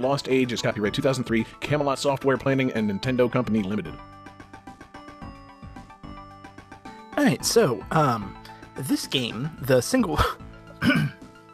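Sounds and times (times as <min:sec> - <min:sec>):
speech: 0:00.0 - 0:04.2, 0:07.2 - 0:10.9
person coughing: 0:10.8 - 0:11.2.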